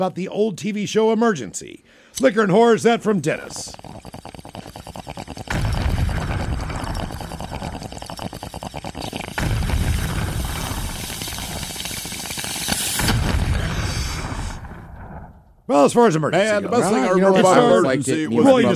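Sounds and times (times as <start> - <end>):
speech: 0.0 - 4.2, 15.8 - 18.7
explosion sound effects with sustained rumbling roar: 5.5 - 7.9, 9.3 - 11.8, 12.7 - 15.7.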